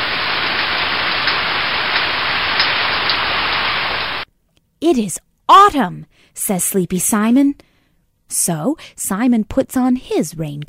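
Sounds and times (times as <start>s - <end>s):
rain falling: 0.0s - 4.3s
speech: 4.9s - 7.7s, 8.3s - 10.6s.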